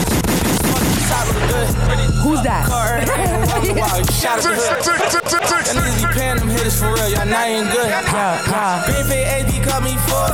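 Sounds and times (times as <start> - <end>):
gunshots: 0.0 - 1.3
laughter: 1.1 - 8.9
speech: 2.3 - 10.3.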